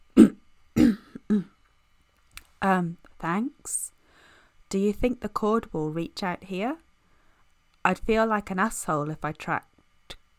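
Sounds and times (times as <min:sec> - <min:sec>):
voice acting out a man clearing his throat: 0:00.2 - 0:01.6
speech: 0:02.6 - 0:04.0, 0:04.7 - 0:06.8, 0:07.8 - 0:09.7.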